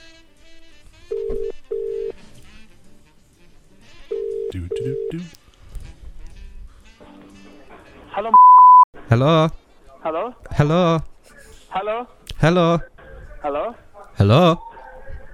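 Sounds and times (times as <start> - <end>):
telephone ringing tone heard over the line on a call: 1.1 - 2.2, 4.1 - 5.2, 8.3 - 8.8
soft voices murmuring: 2.1 - 8.4, 9.0 - 15.3
speech: 4.6 - 5.4, 8.2 - 8.4, 9.1 - 11.1, 11.8 - 14.7.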